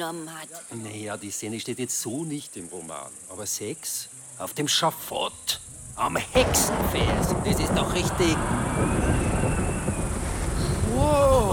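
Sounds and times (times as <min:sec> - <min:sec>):
speech: 0:00.0 - 0:09.4
deep rumble of thunder in a thunderstorm: 0:05.6 - 0:11.5.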